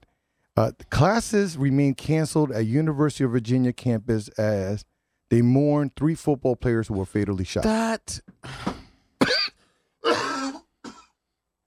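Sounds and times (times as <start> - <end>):
speech: 0.6 - 8.8
harsh coughs: 8.4 - 11.2
throat clearing: 8.4 - 11.2.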